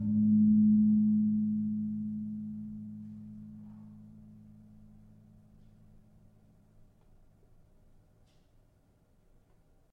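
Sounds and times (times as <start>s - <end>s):
tuned gamelan gong in A: 0.0s - 5.1s.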